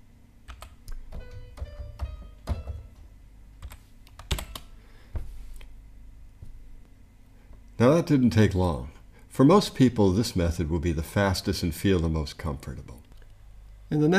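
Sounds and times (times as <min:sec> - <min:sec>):
keystrokes on a computer keyboard entering music notes: 0:00.5 - 0:02.9, 0:03.6 - 0:04.7
speech: 0:07.8 - 0:13.0, 0:13.9 - 0:14.1.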